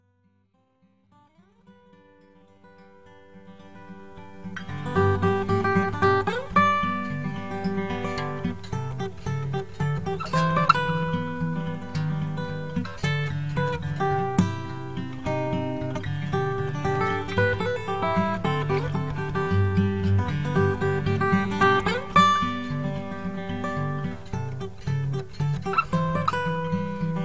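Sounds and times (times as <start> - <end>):
solo guitar: 0.0 - 27.2.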